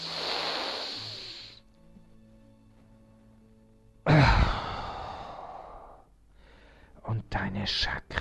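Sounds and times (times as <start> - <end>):
deep breathing in and out: 0.0 - 1.6, 4.1 - 7.0
speech: 7.5 - 8.2.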